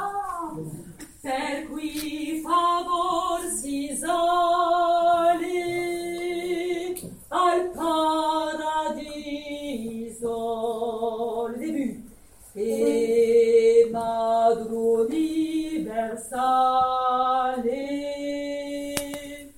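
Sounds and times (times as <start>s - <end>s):
sacred vocal piece: 0.1s - 19.5s.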